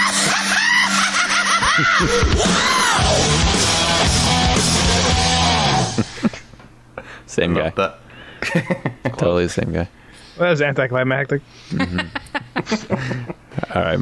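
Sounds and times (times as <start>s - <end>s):
laughter: 0.0s - 3.2s, 8.4s - 9.2s, 11.7s - 13.7s
speech: 1.8s - 5.6s, 7.4s - 12.9s, 13.7s - 14.0s
loud sustained scream sound effect played from a soundboard: 2.3s - 3.7s.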